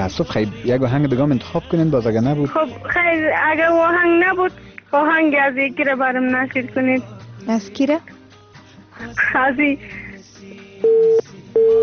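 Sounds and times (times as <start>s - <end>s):
speech: 0.0s - 8.2s, 9.0s - 10.0s
telephone busy tone after a dropped call: 10.8s - 11.8s.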